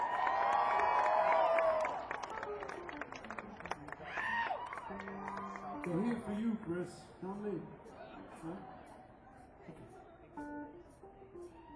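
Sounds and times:
crowd cheering with whoops and shouts: 0.0 - 2.6, 4.0 - 5.8
crowd applauding: 0.0 - 6.5
speech: 5.8 - 8.8.

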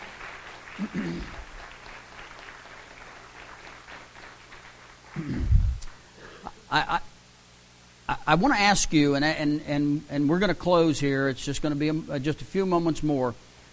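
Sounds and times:
audience applause: 0.0 - 5.4
speech: 0.8 - 1.4, 6.7 - 7.1, 8.3 - 13.4.

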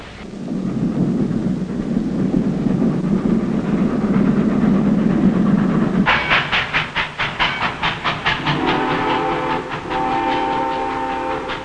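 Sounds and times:
train rumbling on rails: 0.0 - 11.6
train wheels clattering over track joints: 6.0 - 11.6
sustained train horn blaring: 8.4 - 11.6.

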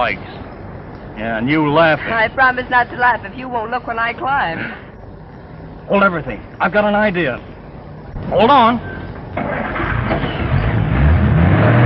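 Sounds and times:
speech: 0.0 - 0.4, 1.2 - 4.8, 5.9 - 7.5, 8.2 - 9.7
car engine revving while driving up onto sidewalk: 9.3 - 11.8.

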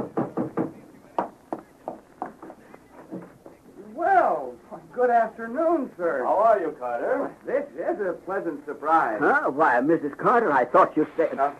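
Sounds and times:
knocking on a door: 0.0 - 2.4
speech: 5.0 - 11.5.

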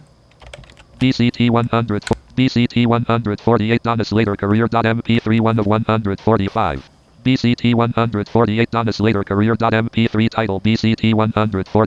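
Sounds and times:
typing on a computer keyboard: 0.0 - 2.2
electronic synthetic voice: 1.0 - 11.8
speech: 1.0 - 11.8.

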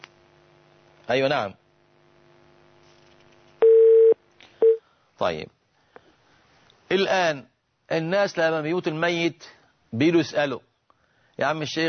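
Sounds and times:
speech: 1.1 - 1.6, 5.2 - 5.6, 6.9 - 10.7, 11.4 - 11.8
telephone beeps of an incoming phone call connecting: 3.6 - 4.8.

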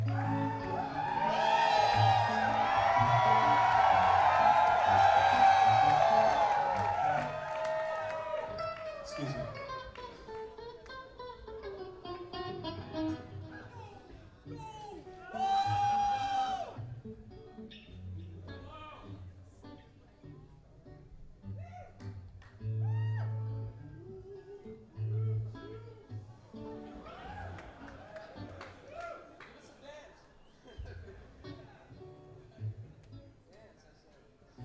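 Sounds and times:
audience screaming and cheering: 0.0 - 9.6, 14.6 - 16.9, 22.8 - 23.7, 26.6 - 29.3.

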